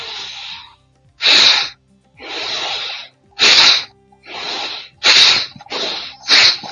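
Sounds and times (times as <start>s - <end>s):
forceful rhythmic breathing from a pranayama breathing exercise: 0.0s - 6.7s.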